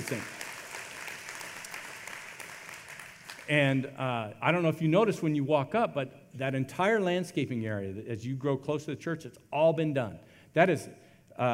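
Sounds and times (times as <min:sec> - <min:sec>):
crowd at a church clapping for volunteers: 0:00.0 - 0:03.8
speech: 0:00.1 - 0:00.4, 0:03.5 - 0:11.5.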